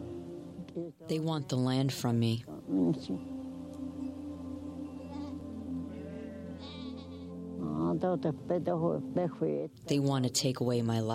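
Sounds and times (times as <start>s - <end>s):
speech: 0.7s - 3.3s, 8.0s - 11.1s
sheep bleating: 5.0s - 7.3s.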